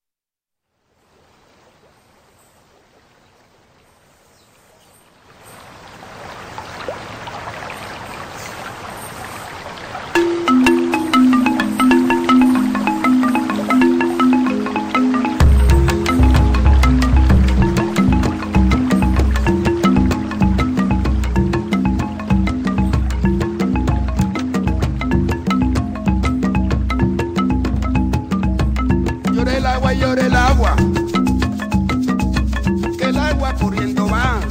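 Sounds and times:
song with plucked melodic line: 10.2s - 34.5s
heavy bass rhythm: 10.5s - 34.5s.

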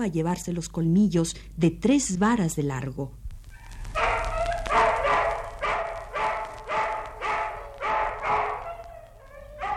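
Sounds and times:
speech: 0.0s - 3.2s
dogs barking: 3.5s - 9.7s.

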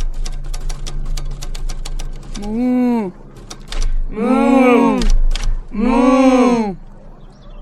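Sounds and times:
typewriter keys clacking: 0.0s - 2.6s, 3.4s - 4.1s, 5.0s - 5.6s
steady low hum: 0.0s - 7.6s
speech: 2.4s - 3.2s, 4.1s - 4.4s.

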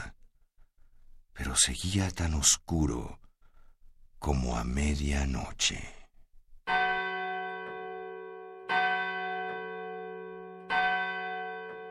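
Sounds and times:
speech: 1.6s - 3.2s, 4.2s - 6.0s
church bell striking the hour: 6.7s - 11.8s.

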